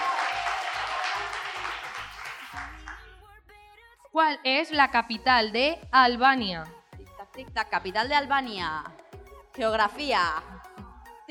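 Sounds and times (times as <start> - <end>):
quiz audience applause after a correct answer: 0.0 - 3.0
steady thumping music beat: 0.4 - 4.0, 4.8 - 11.2
speech: 4.2 - 6.8, 7.4 - 9.0, 9.6 - 10.6.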